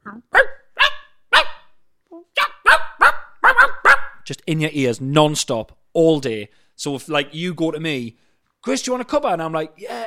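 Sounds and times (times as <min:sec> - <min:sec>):
dog barking: 0:00.3 - 0:01.7, 0:02.4 - 0:04.2
speech: 0:04.3 - 0:10.0.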